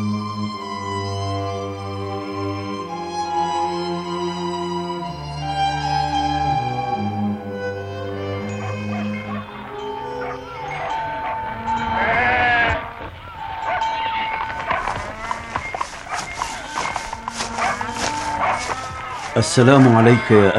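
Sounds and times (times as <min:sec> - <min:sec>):
steady outdoor noise: 0:00.0 - 0:20.5
flock of sheep bleating: 0:08.0 - 0:20.5
speech: 0:19.4 - 0:20.5.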